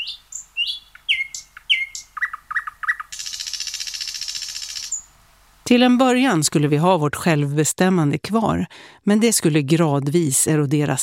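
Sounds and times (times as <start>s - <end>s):
nightingale singing with whistles, chirps and buzzing trill: 0.0s - 5.9s
speech: 5.7s - 11.0s.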